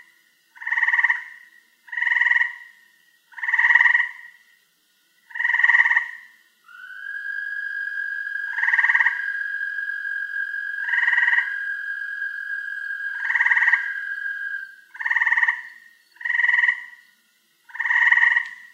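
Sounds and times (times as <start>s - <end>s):
frog giving buzzy croaks: 0.5s - 4.4s, 5.2s - 17.0s, 17.6s - 18.7s
steady high whine: 6.5s - 16.2s.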